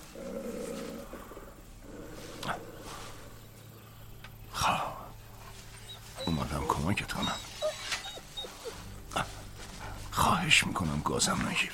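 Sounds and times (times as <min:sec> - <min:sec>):
wounded wolf growling with its leg caught in an iron trap: 0:00.0 - 0:03.7, 0:05.8 - 0:10.2
speech: 0:06.4 - 0:07.5, 0:10.4 - 0:11.7.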